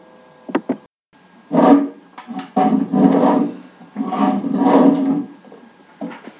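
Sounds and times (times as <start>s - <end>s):
chair scraping across a classroom floor: 1.5s - 6.3s.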